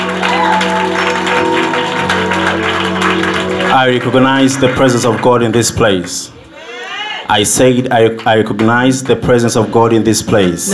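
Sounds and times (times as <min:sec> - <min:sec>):
audience clapping: 0:00.0 - 0:06.3, 0:07.6 - 0:09.8
people cheering: 0:00.0 - 0:07.4
speech: 0:03.8 - 0:06.4, 0:07.3 - 0:10.7.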